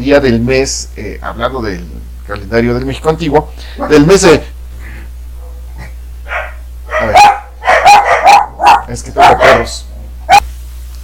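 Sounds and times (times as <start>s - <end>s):
speech: 0.0s - 4.5s
faint steady low hum: 0.0s - 11.0s
small dogs barking: 3.7s - 4.2s, 5.4s - 10.5s.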